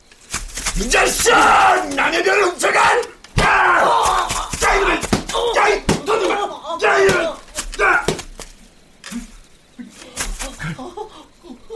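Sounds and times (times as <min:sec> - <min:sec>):
speech: 0:00.8 - 0:04.0
person crying out in pain and moaning: 0:03.6 - 0:08.2
laughter: 0:09.8 - 0:11.7.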